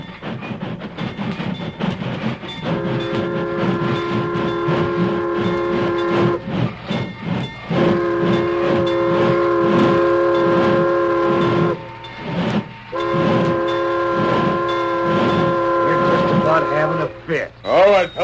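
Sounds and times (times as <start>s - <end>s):
train approaching and stopping, rumbling and clattering: 0.0s - 18.2s
long steady train horn blasts: 2.6s - 6.5s, 7.7s - 17.5s.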